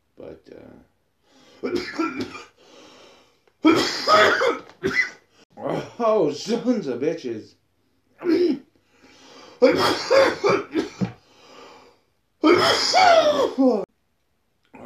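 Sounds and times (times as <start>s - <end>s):
speech: 0.3s - 0.9s, 1.6s - 2.5s, 3.7s - 5.2s, 6.0s - 7.6s, 9.7s - 10.8s, 12.6s - 13.8s
person coughing in harsh raspy fits: 1.6s - 2.6s, 3.6s - 6.0s, 8.2s - 8.6s, 9.6s - 11.2s, 12.4s - 13.8s.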